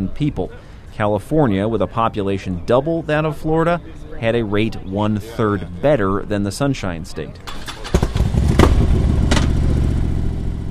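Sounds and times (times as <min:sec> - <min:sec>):
speech: 0:00.0 - 0:07.7
police motorcycle engine idling: 0:07.5 - 0:10.6.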